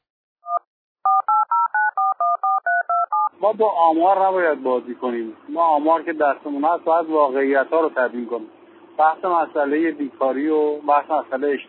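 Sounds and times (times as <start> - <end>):
touch-tone telephone keypad beeps: 0.4 - 3.3
speech: 3.4 - 11.6.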